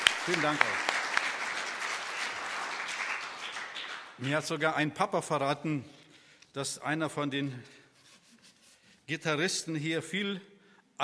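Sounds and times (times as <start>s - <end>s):
audience applauding in a reverberant room: 0.0s - 4.5s
speech: 0.2s - 0.9s, 4.2s - 6.0s, 6.6s - 7.8s, 9.1s - 11.0s.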